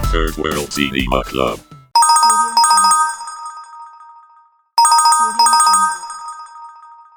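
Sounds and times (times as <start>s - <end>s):
speech: 0.2s - 1.7s
bright tonal cell phone ringtone with chiming notes: 1.9s - 7.1s.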